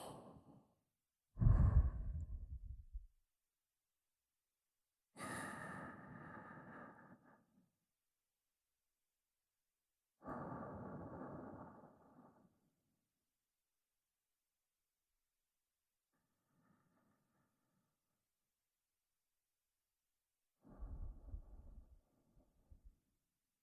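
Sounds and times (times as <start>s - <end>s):
person breathing in and out slowly and deeply: 1.4s - 3.0s, 5.2s - 7.6s, 10.2s - 12.7s, 20.6s - 22.0s.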